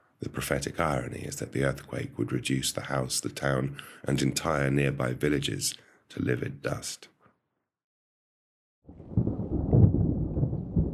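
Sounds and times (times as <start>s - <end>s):
speech: 0.2s - 7.1s
deep rolling thunder: 8.9s - 10.9s.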